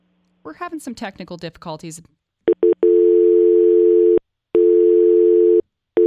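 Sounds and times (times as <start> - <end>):
speech: 0.4 - 2.2
telephone dial tone: 2.5 - 6.0.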